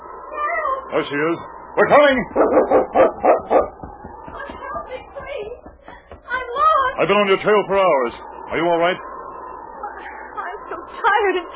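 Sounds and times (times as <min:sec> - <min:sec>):
speech: 0:00.9 - 0:03.6, 0:07.0 - 0:09.1, 0:11.2 - 0:11.5
dog barking: 0:02.2 - 0:03.9
faint tapping sounds: 0:02.7 - 0:07.0.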